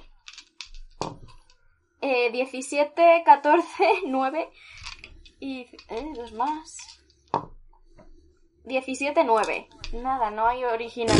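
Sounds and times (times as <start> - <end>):
handful of dice clattering across a hard surface: 0.0 - 1.5, 4.7 - 7.0
speech: 2.1 - 4.8, 5.4 - 7.0, 8.6 - 11.1.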